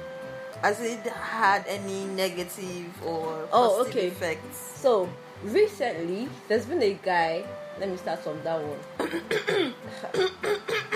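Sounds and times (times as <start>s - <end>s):
speech: 0.6s - 10.9s
throat clearing: 9.0s - 10.9s.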